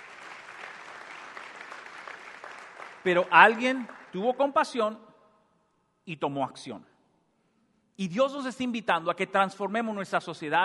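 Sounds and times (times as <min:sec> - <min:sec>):
audience at a religious gathering applauding: 0:00.0 - 0:04.2
speech: 0:03.0 - 0:05.1, 0:06.1 - 0:06.9, 0:08.0 - 0:10.6.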